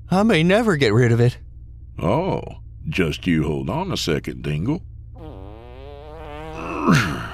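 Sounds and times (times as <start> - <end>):
speech: 0.1 - 1.4, 2.0 - 4.9, 6.8 - 7.3
fart inside a car with the window rolled up: 5.2 - 7.3.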